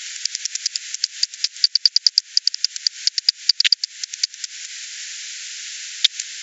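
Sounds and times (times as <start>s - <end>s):
bat echolocation pulses: 0.1s - 4.7s, 6.0s - 6.3s.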